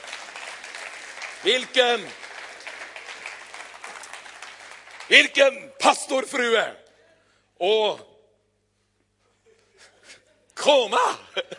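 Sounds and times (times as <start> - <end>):
audience applause: 0.0 - 5.4
speech: 1.4 - 2.2, 5.1 - 6.8, 7.6 - 8.1, 10.6 - 11.5.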